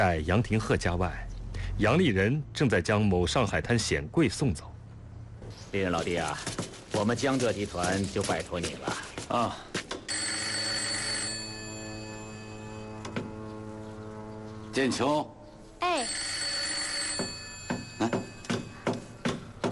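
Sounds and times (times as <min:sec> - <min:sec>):
speech: 0:00.0 - 0:04.7, 0:05.7 - 0:09.8, 0:14.8 - 0:16.3
telephone ringing with buzzing electronic tone: 0:10.1 - 0:13.3, 0:15.8 - 0:19.2.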